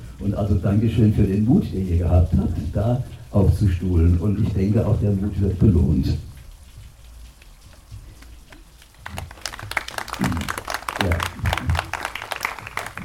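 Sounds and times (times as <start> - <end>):
speech: 0.2 - 6.3
audience applause: 8.8 - 13.0.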